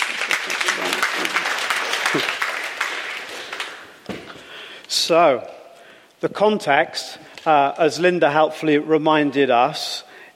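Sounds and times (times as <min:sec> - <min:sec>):
audience applause: 0:00.0 - 0:04.0
speech: 0:02.2 - 0:02.4, 0:05.1 - 0:05.6, 0:06.2 - 0:10.3.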